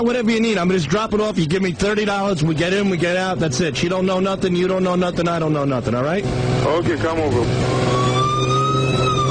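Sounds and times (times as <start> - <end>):
speech: 0.0 - 7.8
police car engine rumble: 0.0 - 9.3
police car siren wailing while chasing a vehicle: 7.4 - 9.3.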